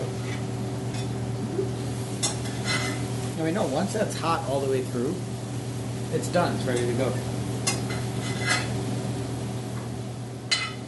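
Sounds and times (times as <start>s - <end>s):
low steady hum: 0.0s - 10.8s
utensil stirring and flipping food in a pan: 2.1s - 4.2s, 6.6s - 8.8s
speech: 3.4s - 5.3s, 6.1s - 7.4s.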